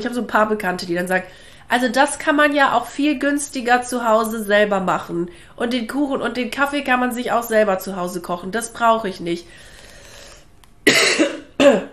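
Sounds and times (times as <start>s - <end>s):
speech: 0.0s - 9.7s
person coughing: 10.8s - 11.9s.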